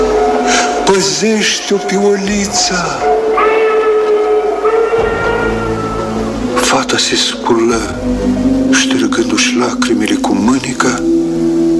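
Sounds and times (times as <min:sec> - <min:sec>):
steam train whistle: 0:00.0 - 0:06.7
low rumble of the train: 0:00.0 - 0:11.0
speech: 0:00.9 - 0:03.6, 0:06.7 - 0:11.6.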